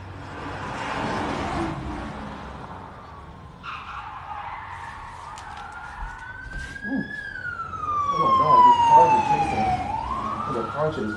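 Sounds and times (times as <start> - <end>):
siren wailing: 3.6 - 11.1
people talking: 8.1 - 9.8, 10.5 - 11.1.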